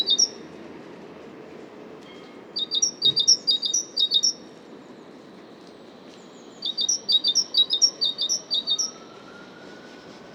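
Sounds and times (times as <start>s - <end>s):
great tit singing: 0.0s - 0.4s, 2.1s - 5.2s, 6.1s - 9.0s.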